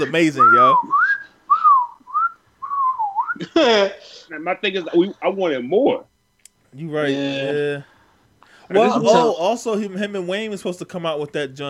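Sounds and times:
speech: 0.0s - 1.0s, 3.4s - 6.1s, 6.7s - 7.9s, 8.7s - 11.6s
whistled melody of a song: 0.4s - 3.4s.

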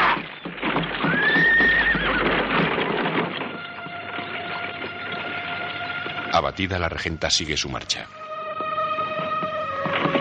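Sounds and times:
horse whinnying: 0.0s - 3.4s
19th-century horse-drawn carriage rumbling: 0.0s - 6.4s, 9.0s - 10.1s
horse hooves clip-clopping: 0.0s - 10.1s
speech: 6.4s - 8.2s.

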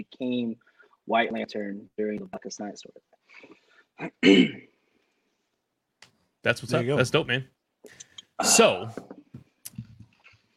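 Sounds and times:
speech: 0.0s - 4.7s, 6.4s - 9.2s
person coughing: 4.0s - 4.7s.

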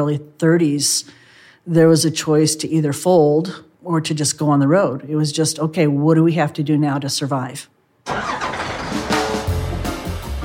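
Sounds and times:
speech: 0.0s - 8.4s
bus engine starting: 8.1s - 9.7s.

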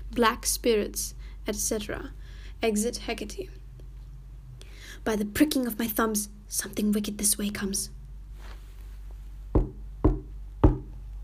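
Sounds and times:
speech: 0.2s - 3.6s, 5.0s - 8.0s
heavy knocks on a door: 9.5s - 11.0s.

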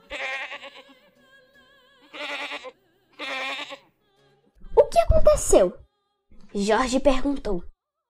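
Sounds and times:
goat bleating loudly: 0.0s - 1.0s, 2.0s - 3.9s
speech: 5.2s - 5.8s, 6.5s - 7.7s.

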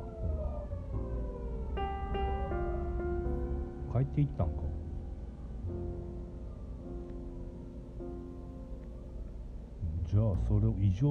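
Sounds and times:
fire engine siren wailing as it passes: 0.0s - 8.0s
low rumbling traffic noise: 0.0s - 11.0s
speech: 4.0s - 4.6s, 10.4s - 11.0s.

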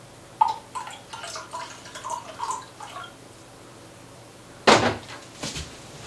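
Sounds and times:
water pouring into a measuring container: 0.4s - 3.2s.

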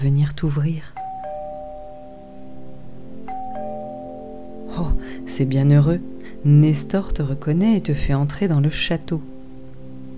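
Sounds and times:
speech: 0.0s - 1.0s, 4.8s - 9.3s
doorbell at the front door of a small country château chiming: 1.0s - 2.7s, 3.3s - 5.0s.

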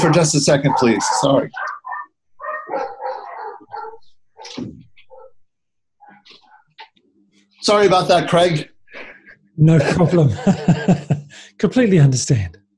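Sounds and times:
speech: 0.0s - 1.8s, 4.4s - 4.8s, 7.6s - 8.7s, 9.6s - 12.6s
several dogs barking in overlapping bursts: 0.0s - 5.4s, 6.0s - 6.8s
laughter: 9.0s - 11.6s.

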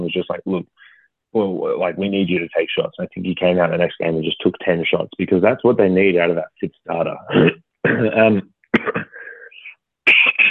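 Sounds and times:
speech: 0.2s - 9.0s
raspy cough: 7.3s - 8.2s, 8.8s - 9.3s, 10.1s - 10.4s
throat clearing: 7.3s - 10.4s.

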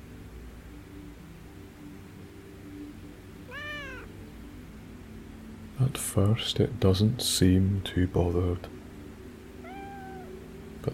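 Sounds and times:
steady low hum and hiss: 0.0s - 10.9s
cat meow: 3.5s - 4.2s, 9.6s - 10.4s
speech: 5.8s - 8.8s.

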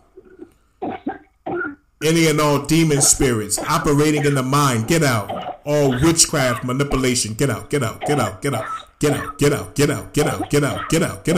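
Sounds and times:
person coughing into a cup: 0.8s - 1.8s, 5.2s - 6.6s, 8.0s - 9.4s
speech: 2.0s - 11.3s.

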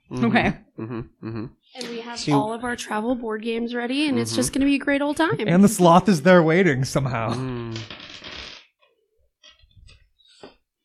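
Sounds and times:
speech: 0.1s - 8.0s
handful of dice being scooped up: 7.8s - 8.7s.

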